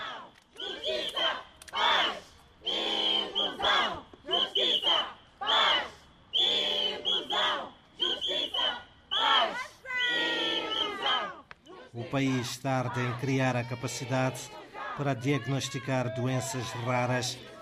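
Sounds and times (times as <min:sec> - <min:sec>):
protest march crowd chanting in unison in the street: 0:00.0 - 0:17.6
speech: 0:12.2 - 0:17.5.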